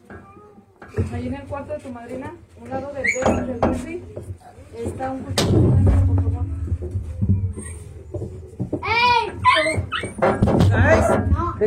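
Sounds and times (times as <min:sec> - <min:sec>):
quiet voices murmuring: 0:00.0 - 0:11.6
speech: 0:00.1 - 0:07.7, 0:09.6 - 0:11.6
dog whimpering and yipping: 0:03.0 - 0:03.6, 0:07.1 - 0:08.1, 0:09.3 - 0:10.4.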